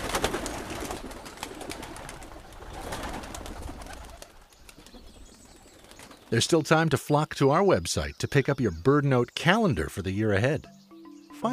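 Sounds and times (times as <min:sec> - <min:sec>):
pigeon wings rustling and fluttering: 0:00.0 - 0:06.3
flock of pigeons cooing: 0:00.0 - 0:06.4
speech: 0:06.3 - 0:10.7.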